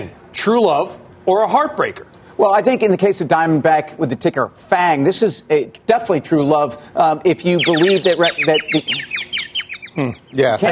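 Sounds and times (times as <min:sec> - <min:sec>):
speech: 0:00.0 - 0:09.2, 0:10.0 - 0:10.7
birds chirping with short high downward-sweeping calls: 0:06.4 - 0:10.7.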